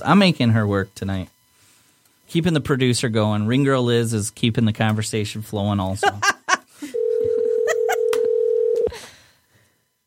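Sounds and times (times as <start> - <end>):
speech: 0.0 - 1.3, 2.3 - 6.9
laughter: 6.0 - 8.2
loud steady dial tone: 6.9 - 8.9.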